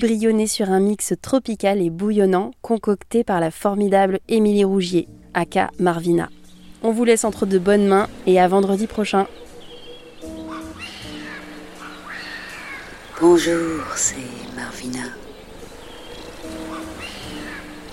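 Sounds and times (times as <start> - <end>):
speech: 0.0 - 9.5, 13.2 - 15.2
exotic birds calling and squawking: 6.2 - 17.9
loud harsh exotic bird call: 8.8 - 17.9.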